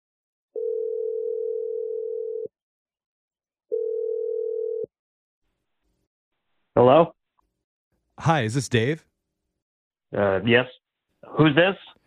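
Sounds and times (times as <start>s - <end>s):
telephone dial tone: 0.6s - 2.5s, 3.7s - 4.9s
speech: 6.8s - 7.2s, 8.2s - 9.1s, 10.1s - 12.0s.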